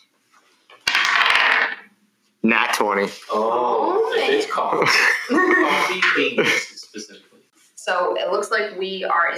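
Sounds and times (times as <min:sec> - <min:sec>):
dice rattling inside a hard bowl: 0:00.8 - 0:01.8
speech: 0:02.4 - 0:09.3
laughter: 0:04.6 - 0:07.1.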